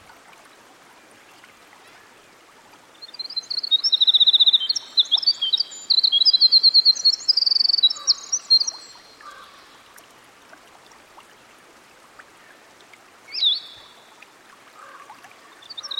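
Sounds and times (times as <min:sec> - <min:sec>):
winter wren singing by a stream: 0:03.1 - 0:09.4, 0:15.6 - 0:15.9.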